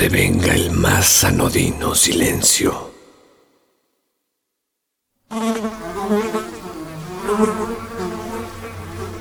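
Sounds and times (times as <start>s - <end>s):
speech: 0.0s - 3.0s, 5.3s - 5.8s
fly wings buzzing in flight: 5.3s - 9.1s.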